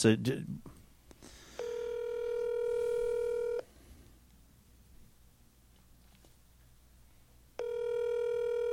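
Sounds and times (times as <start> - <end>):
speech: 0.0 - 0.6
telephone touch tones: 1.6 - 3.7, 7.6 - 8.7.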